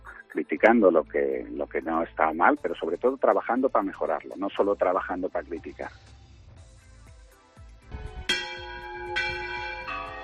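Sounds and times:
speech: 0.4 - 6.1
large cathedral church bells ringing: 8.2 - 10.2.

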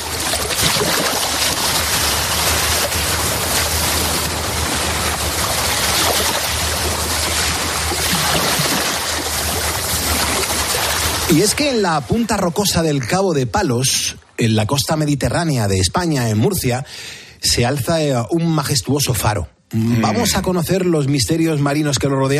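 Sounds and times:
Mediterranean sea waves at the rocky point of Cabo de Palos in Murcia Spain: 0.0 - 13.2
speech: 11.3 - 22.3.

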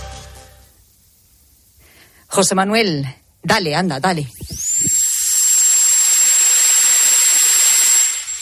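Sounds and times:
speech: 2.3 - 4.6
dentist's drill turbine running: 4.3 - 8.4.

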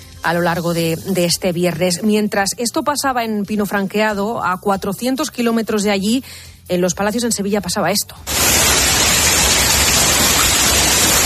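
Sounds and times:
speech: 0.2 - 9.0
hailstorm pelting the street: 8.3 - 11.2.

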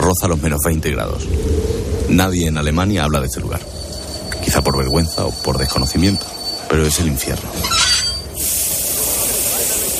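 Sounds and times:
speech: 0.1 - 3.8, 4.4 - 7.9
train steam-like hiss: 8.2 - 9.9.

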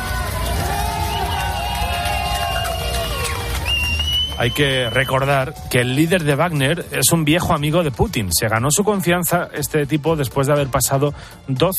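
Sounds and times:
outdoor crowd of residents cheering in Rostov at night: 0.0 - 8.2
scattered clapping by street crowd in Rostov: 0.0 - 9.2
speech: 4.4 - 11.7.

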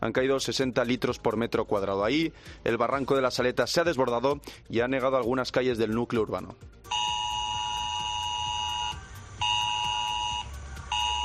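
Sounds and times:
speech: 0.0 - 7.1
emergency mobile phone flood alert multi-tone beep: 6.9 - 11.2.

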